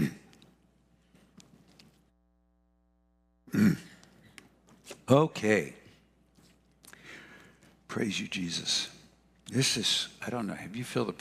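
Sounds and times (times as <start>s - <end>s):
person clearing throat: 0.0s - 0.4s, 3.5s - 4.2s
speech: 5.1s - 5.8s, 7.9s - 11.1s.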